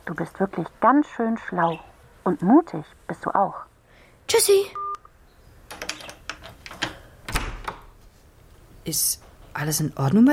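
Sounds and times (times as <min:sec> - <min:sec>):
speech: 0:00.1 - 0:03.7, 0:04.3 - 0:04.8, 0:08.8 - 0:10.3
door being unlocked with sharp metallic clicks and rattles: 0:05.7 - 0:08.0.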